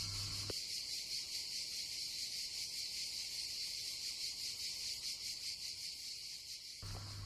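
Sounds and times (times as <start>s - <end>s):
cicadas buzzing: 0.0s - 7.2s.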